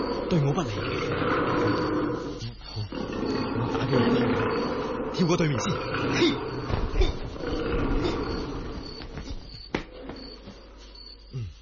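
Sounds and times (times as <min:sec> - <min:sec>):
tiger roaring: 0:00.0 - 0:09.0
growls: 0:00.0 - 0:09.1
speech: 0:00.3 - 0:02.0, 0:05.2 - 0:07.2.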